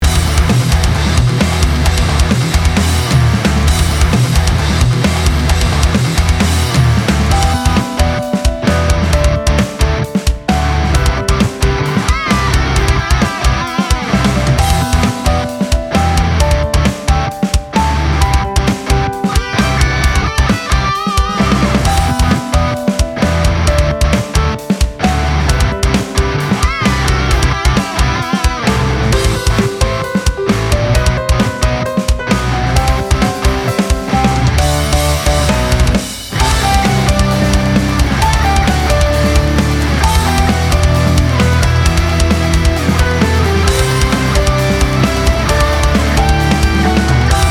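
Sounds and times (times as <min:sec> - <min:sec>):
emotional rock music: 0:00.0 - 0:47.5.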